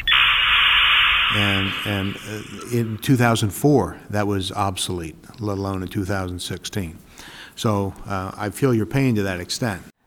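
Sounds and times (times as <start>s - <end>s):
dial-up modem connection noise: 0.0s - 3.2s
speech: 1.3s - 9.9s.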